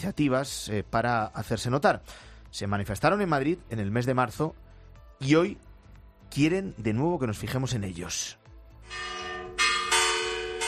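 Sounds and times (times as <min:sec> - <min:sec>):
speech: 0:00.0 - 0:04.6, 0:05.2 - 0:05.7, 0:06.3 - 0:09.2
church bells ringing at noon in a Spanish town during a rural protest: 0:08.9 - 0:10.6.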